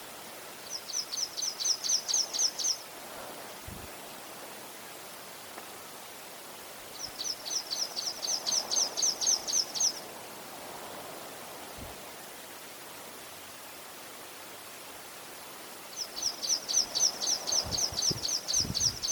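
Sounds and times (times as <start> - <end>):
steady background hiss: 0.0 - 19.0
water pipit calling with rapid high chirps: 0.6 - 2.9, 6.9 - 10.1, 15.9 - 19.0.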